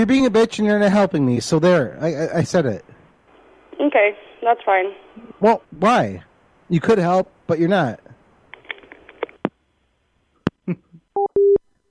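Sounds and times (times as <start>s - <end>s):
speech: 0.0s - 2.9s, 3.8s - 8.0s
electronic telephone beeping tones: 11.2s - 11.6s.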